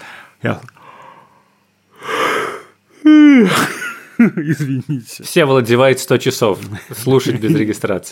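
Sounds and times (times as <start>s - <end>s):
speech: 0.4s - 0.8s, 3.4s - 8.1s
breathy yawn: 2.0s - 3.6s
laughter: 3.4s - 5.2s.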